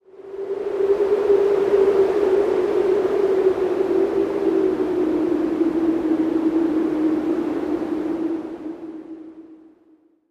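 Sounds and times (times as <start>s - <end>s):
wind howling: 0.0s - 10.0s.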